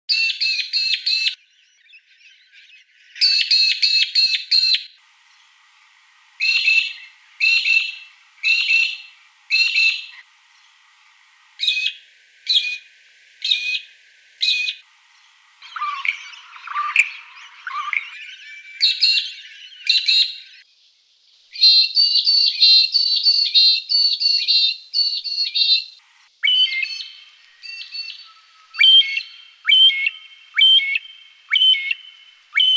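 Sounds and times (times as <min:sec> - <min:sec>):
magpie-lark calling: 0:00.1 - 0:05.0, 0:06.4 - 0:10.2, 0:11.6 - 0:14.8, 0:15.6 - 0:20.6, 0:21.6 - 0:32.7.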